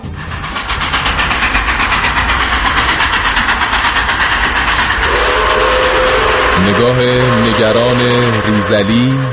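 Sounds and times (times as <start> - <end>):
approaching train rumbling and clattering: 0.0 - 9.3
approaching train blowing its whistle: 5.0 - 9.3
speech: 6.7 - 9.3.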